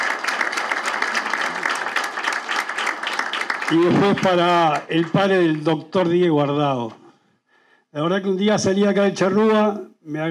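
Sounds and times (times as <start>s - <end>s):
audience applause: 0.0s - 6.0s
speech: 3.7s - 7.0s, 7.9s - 10.3s.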